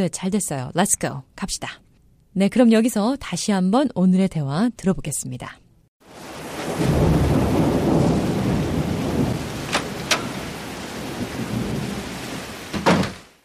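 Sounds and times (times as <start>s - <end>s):
speech: 0.0s - 1.8s, 2.4s - 5.6s
heavy rain: 6.0s - 13.4s
thunder rumbling: 6.1s - 13.2s.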